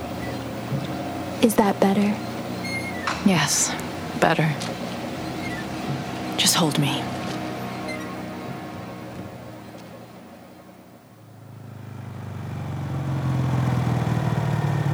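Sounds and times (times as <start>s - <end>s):
motorcycle engine running: 0.0s - 14.9s
speech: 1.4s - 2.3s, 3.2s - 4.8s, 6.4s - 7.2s.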